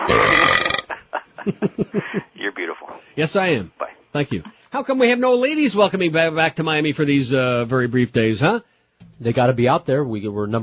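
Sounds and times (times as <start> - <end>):
loud drawn-out belch: 0.0 - 1.0
laughter: 0.9 - 2.3
speech: 1.4 - 10.6.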